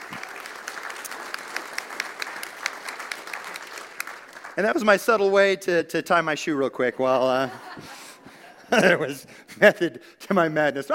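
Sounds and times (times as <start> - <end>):
room full of people clapping: 0.0 - 5.5
speech: 4.6 - 8.0, 8.7 - 10.9
laughter: 7.1 - 9.3.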